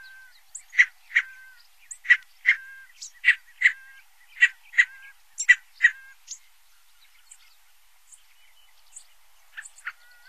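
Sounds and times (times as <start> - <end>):
Scaled Quail nasal calls: 0.0 - 6.2.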